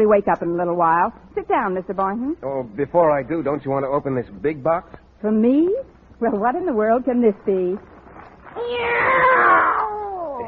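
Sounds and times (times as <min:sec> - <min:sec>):
speech: 0:00.0 - 0:07.9, 0:08.5 - 0:10.0
cat meowing: 0:08.5 - 0:10.4.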